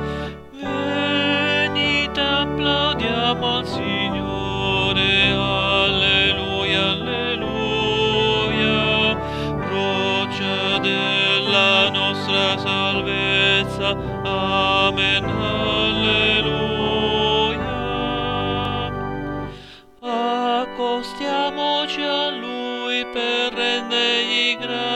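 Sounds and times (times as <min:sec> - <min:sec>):
tenor choir backing: 0:00.1 - 0:24.9.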